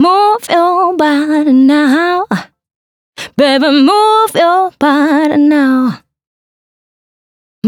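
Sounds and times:
female vocal ad-libs in C for disco house: 0.0 - 2.6, 3.2 - 6.2.

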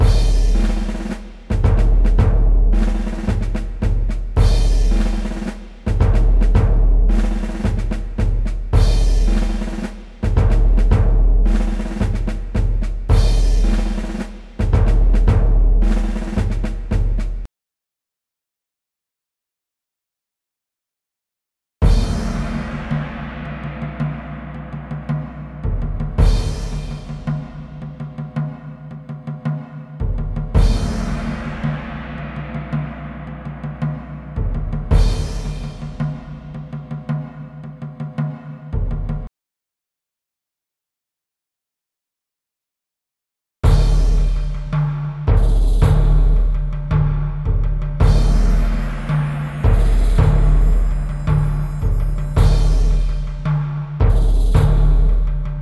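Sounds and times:
orchestral drums at 110 BPM: 0.0 - 17.5, 21.8 - 39.3, 43.6 - 55.5.

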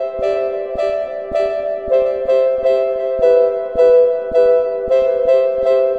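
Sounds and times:
ambient piano: 0.0 - 5.9.

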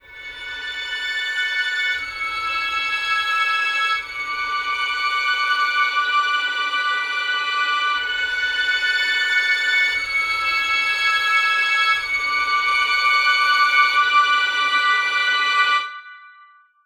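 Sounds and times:
twisted strings: 0.0 - 16.2.

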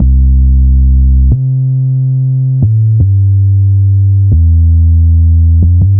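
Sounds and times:
ambient sawtooth and sine synth tones: 0.0 - 5.9.

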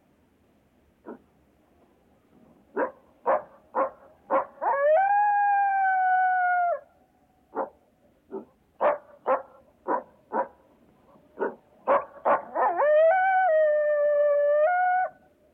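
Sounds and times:
coyote giving sharp barks and a long level howl: 2.8 - 6.9, 11.4 - 15.3.

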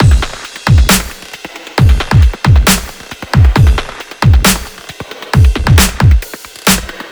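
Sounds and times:
table drum kit: 0.0 - 7.0.

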